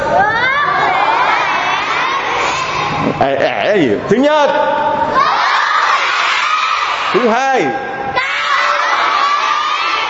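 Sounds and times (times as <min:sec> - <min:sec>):
children shouting loudly together during a group cheering activity: 0:00.0 - 0:03.2, 0:05.1 - 0:07.3, 0:08.1 - 0:10.0
speech: 0:03.2 - 0:05.3, 0:07.1 - 0:07.9.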